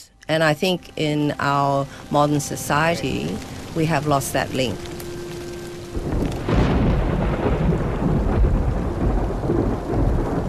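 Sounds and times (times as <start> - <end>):
steady heavy rain: 0.0 - 10.4
speech: 0.3 - 4.9
low rumbles of thunder: 0.4 - 10.4.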